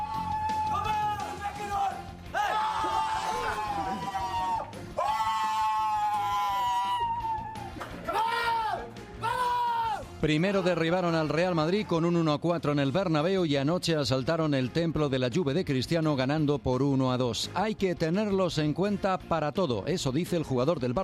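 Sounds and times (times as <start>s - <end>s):
footballers shouting and cheering in a locker room after a win: 0.0s - 12.2s
speech: 10.2s - 21.0s.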